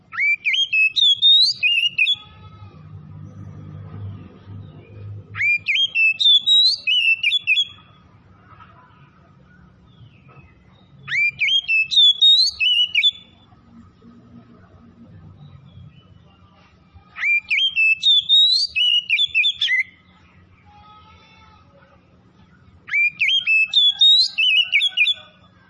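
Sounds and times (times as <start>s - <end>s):
Oriental magpie-robin song of rich, rapid whistled notes: 0.1s - 2.3s, 5.3s - 8.1s, 9.5s - 13.5s, 15.4s - 20.6s, 22.6s - 25.6s.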